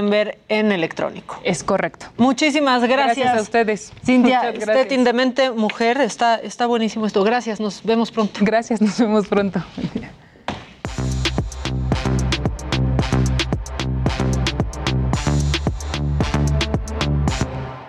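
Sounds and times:
speech: 0.0s - 10.2s
short upbeat segment jingle with punchy rhythmic hits and bass line: 10.9s - 17.8s.

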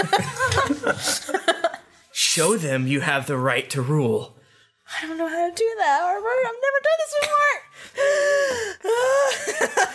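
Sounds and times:
speech: 0.0s - 1.3s, 2.4s - 9.9s
laughter: 0.0s - 2.0s, 9.1s - 9.9s
heavy panicked breathing with wheezing inhales and gasps: 7.7s - 9.9s.

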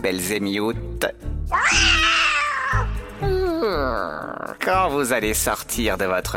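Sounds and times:
speech: 0.0s - 2.1s, 3.2s - 6.3s
black cat meowing loudly: 1.5s - 3.0s.

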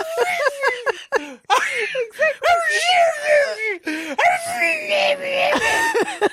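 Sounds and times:
laughter: 0.0s - 1.9s, 5.4s - 6.3s
person imitating a dog howling and screeching: 2.4s - 5.9s.

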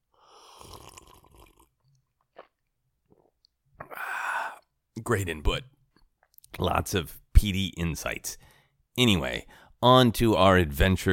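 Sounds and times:
slurping sip of whiskey: 0.2s - 4.8s
breathy exhale: 3.8s - 4.6s
speech: 5.0s - 5.7s, 6.6s - 8.4s, 9.0s - 11.1s.

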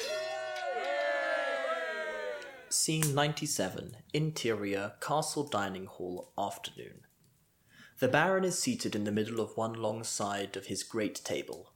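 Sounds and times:
group of tenants giving a loud sustained cheer: 0.0s - 2.8s
speech: 2.7s - 7.1s, 8.0s - 11.7s.

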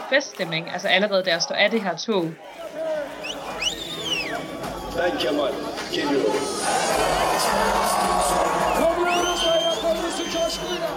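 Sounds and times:
large dense crowd shouting political chants at a rally: 0.0s - 10.9s
speech: 0.1s - 2.8s, 5.0s - 8.5s
constant roar of crowd chatter: 2.6s - 9.2s
people whooping: 3.2s - 4.5s, 6.4s - 10.9s.

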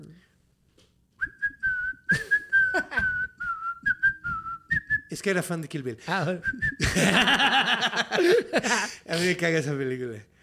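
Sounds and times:
person whistling a short melody: 1.2s - 5.1s, 6.4s - 6.9s
speech: 5.2s - 10.3s
laughter: 6.8s - 9.2s.

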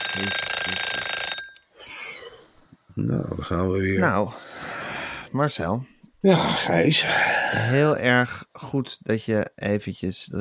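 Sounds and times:
loud shrill alarm clock bell ringing: 0.0s - 1.7s
speech: 0.1s - 1.0s, 3.0s - 4.5s, 5.3s - 10.3s.

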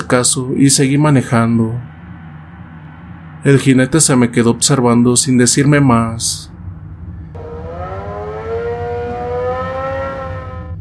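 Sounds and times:
speech: 0.1s - 2.0s, 3.4s - 6.6s
motorcycle engine revving on a quiet road: 7.3s - 10.8s.

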